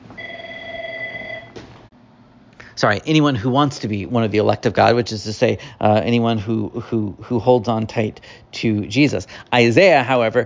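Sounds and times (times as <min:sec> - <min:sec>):
phone ringing with a steady electronic tone: 0:00.1 - 0:01.6
speech: 0:02.8 - 0:10.4.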